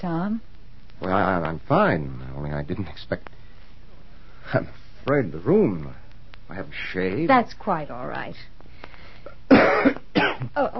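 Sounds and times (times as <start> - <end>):
speech: 0.0 - 3.4, 4.4 - 8.6, 9.5 - 10.7
person coughing raspily: 9.5 - 10.5.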